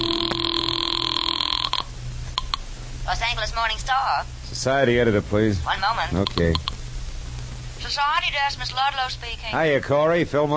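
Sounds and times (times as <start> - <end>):
telephone ringing tone from a house phone call: 0.0 - 2.5
speech: 3.1 - 6.7, 7.8 - 10.5.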